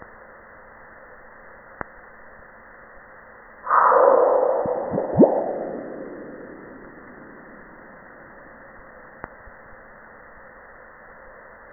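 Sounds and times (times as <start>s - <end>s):
meteoroid striking Mars: 3.7s - 8.4s.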